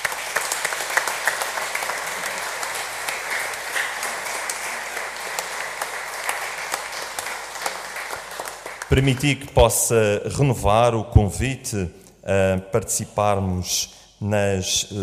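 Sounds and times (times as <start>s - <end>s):
crowd applauding: 0.0s - 9.5s
speech: 8.9s - 15.0s.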